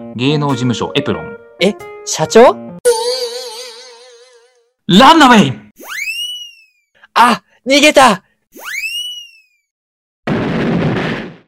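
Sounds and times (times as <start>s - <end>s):
speech: 0.2s - 3.0s, 4.9s - 5.6s, 7.2s - 8.7s
rising whistle: 5.8s - 6.8s
loud explosion sound effect booming and rumbling: 10.3s - 11.4s.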